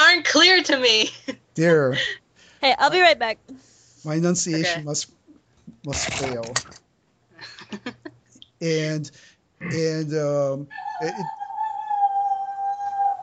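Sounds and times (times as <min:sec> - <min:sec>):
speech: 0:00.3 - 0:05.2, 0:05.8 - 0:06.8, 0:07.4 - 0:08.0, 0:08.6 - 0:11.4
person imitating coyote yips and howls: 0:10.7 - 0:13.2.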